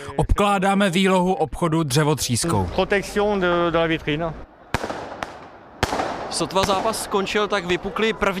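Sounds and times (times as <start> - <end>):
speech: 0.1 - 4.5, 6.3 - 8.3
firecrackers exploding during street riot: 4.7 - 7.2.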